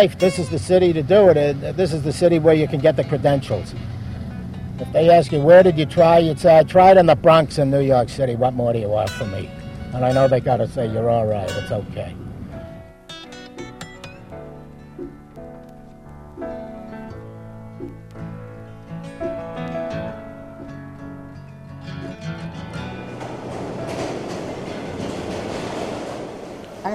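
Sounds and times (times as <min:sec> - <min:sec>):
speech: 0:00.0 - 0:04.0, 0:04.8 - 0:12.2
subway train riding on rails: 0:00.0 - 0:13.0, 0:19.2 - 0:26.9
steady rumble of a subway train: 0:00.0 - 0:26.9
whining metallic tones of a subway train: 0:00.0 - 0:26.9.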